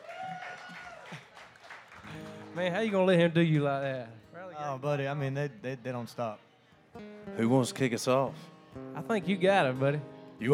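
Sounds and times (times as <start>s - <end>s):
audience cheering voices: 0.0s - 2.7s
audience applause: 0.0s - 3.0s
speech: 2.6s - 10.5s.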